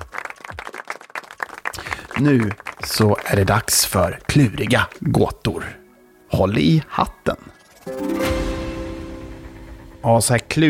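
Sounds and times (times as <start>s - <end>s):
applause: 0.0s - 4.9s
speech: 2.2s - 8.4s, 10.0s - 10.6s.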